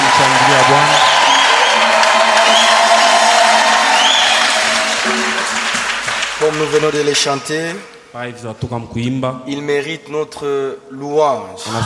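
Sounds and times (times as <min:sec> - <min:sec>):
congregation at a church service cheering: 0:00.0 - 0:07.5
congregation at a church service applauding: 0:00.0 - 0:07.9
speech: 0:06.6 - 0:11.8.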